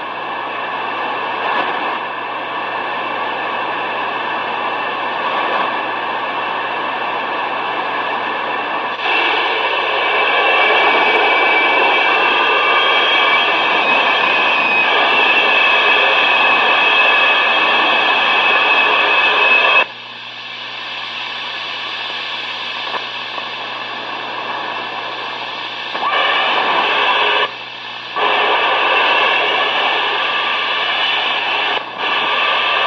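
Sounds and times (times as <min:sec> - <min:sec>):
constant hum: 0:00.0 - 0:32.8
aircraft propeller noise heard over an amateur radio link: 0:09.0 - 0:19.9.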